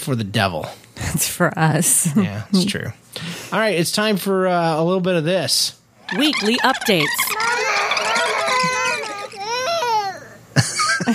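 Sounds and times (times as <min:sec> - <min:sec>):
speech: 0:00.0 - 0:07.4
children crying and wailing: 0:06.1 - 0:10.5.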